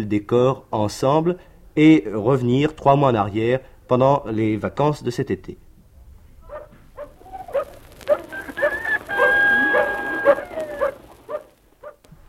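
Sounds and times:
speech: 0.0 - 5.6
dog barking at a farm in central France: 6.4 - 12.0
rooster crowing: 7.2 - 11.5.

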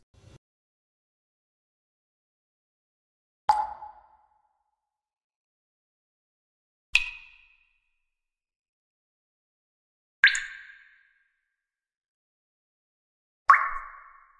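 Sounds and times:
water dripping inside a rock cave: 3.5 - 4.3, 7.0 - 7.7, 10.3 - 11.1, 13.5 - 14.3.

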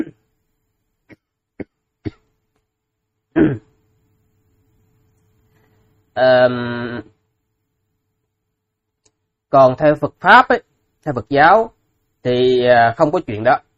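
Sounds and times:
person coughing after choking on saliva: 0.0 - 0.3, 1.1 - 2.3, 3.3 - 3.8
speech: 6.2 - 7.1, 9.5 - 13.7.

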